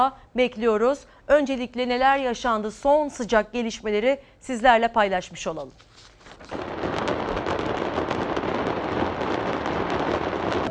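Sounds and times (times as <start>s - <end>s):
speech: 0.0s - 6.7s
many firecrackers bursting as a fireworks factory explodes and burns: 6.1s - 10.6s.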